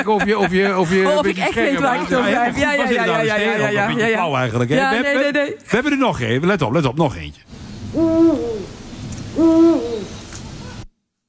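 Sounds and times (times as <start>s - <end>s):
speech: 0.0s - 8.8s, 9.4s - 10.1s
male Eurasian eagle owl giving a territorial call: 7.5s - 10.9s.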